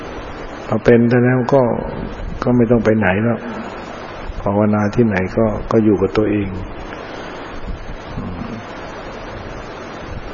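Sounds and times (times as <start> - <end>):
speech: 0.7 - 3.6, 4.4 - 6.8
seaside wind rushing over the microphone: 1.4 - 6.9, 7.5 - 8.6, 9.2 - 10.3.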